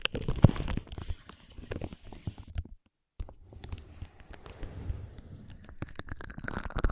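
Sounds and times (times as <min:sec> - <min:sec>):
crackly rubbing and crunching of ear massage on a microphone: 0:00.2 - 0:02.6, 0:03.2 - 0:06.8
soft gliding swishes: 0:03.2 - 0:06.4.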